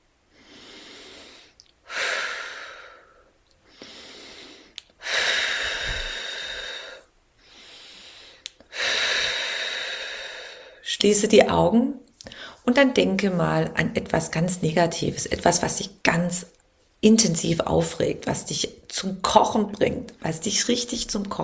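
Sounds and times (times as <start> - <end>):
slow deep breaths in and out: 0.3 - 10.9, 12.2 - 12.6
speech: 11.0 - 12.0, 12.7 - 21.4.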